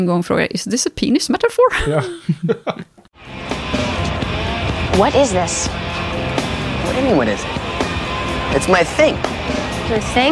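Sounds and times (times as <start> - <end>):
speech: 0.0 - 3.4, 5.0 - 6.0, 6.9 - 7.6, 8.5 - 10.2
laughter: 1.7 - 3.0
engine of an enormous car rumbling as it arrives: 3.2 - 10.2.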